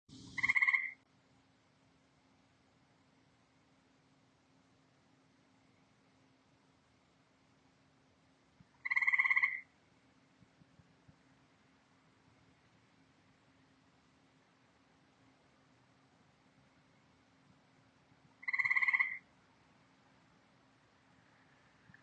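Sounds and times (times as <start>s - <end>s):
grey tree frog in the ornamental gardens of an experimental farm in Ottawa Canada: 0.1s - 1.0s, 8.7s - 9.8s, 18.3s - 19.4s.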